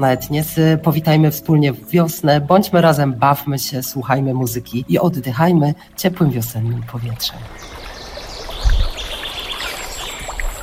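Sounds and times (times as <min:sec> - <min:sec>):
speech: 0:00.0 - 0:07.8
flowing stream water: 0:00.5 - 0:10.6.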